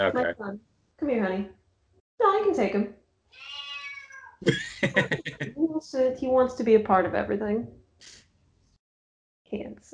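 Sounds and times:
speech: 0:00.0 - 0:01.6, 0:02.2 - 0:03.6, 0:04.4 - 0:08.2, 0:09.5 - 0:09.9
male cat meowing: 0:03.3 - 0:04.5
laughter: 0:04.4 - 0:05.5.

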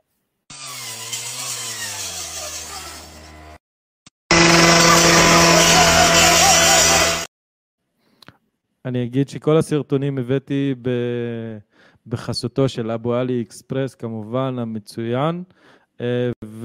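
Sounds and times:
electric saw cutting: 0:00.5 - 0:03.6, 0:04.3 - 0:07.3
speech: 0:08.9 - 0:16.6.

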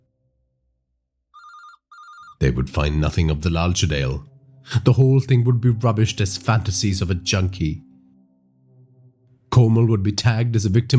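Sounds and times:
telephone ringing: 0:01.4 - 0:02.4
speech: 0:02.4 - 0:07.9, 0:09.6 - 0:10.9.

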